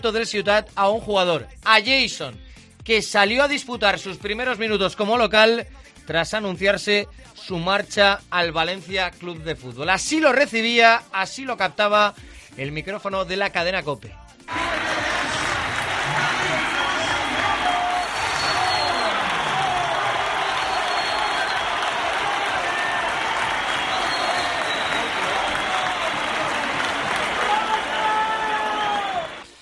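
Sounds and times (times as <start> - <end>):
speech: 0.0 - 14.8
large stadium crowd whistling and booing: 14.5 - 29.6
scattered applause and cheering: 14.5 - 29.6.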